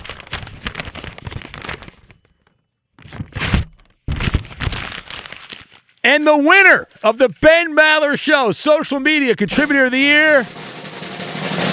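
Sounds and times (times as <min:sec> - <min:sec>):
envelope being torn open: 0:00.0 - 0:02.3, 0:03.0 - 0:06.0
speech: 0:06.1 - 0:10.6.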